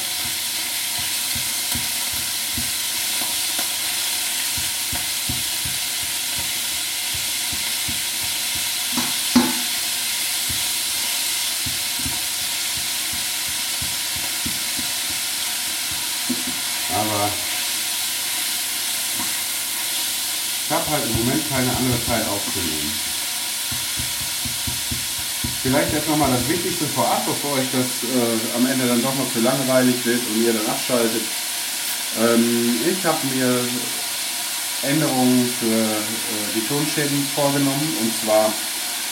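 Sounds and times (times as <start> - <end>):
sizzling in a hot frying pan: 0.0 - 39.1
speech: 20.9 - 23.1, 25.6 - 31.4, 32.2 - 34.0, 34.8 - 38.7.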